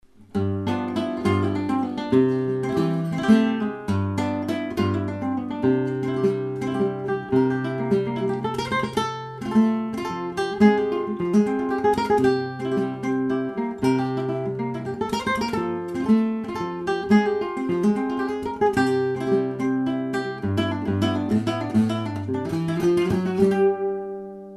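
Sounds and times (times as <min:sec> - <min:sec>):
flamenco guajira music: 0:00.1 - 0:24.5.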